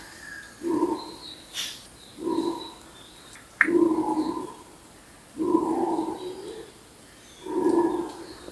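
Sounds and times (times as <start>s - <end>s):
Guianan red howler Alouatta macconnelli calling: 0.0s - 2.9s, 3.6s - 4.7s, 5.4s - 6.8s, 7.4s - 8.5s.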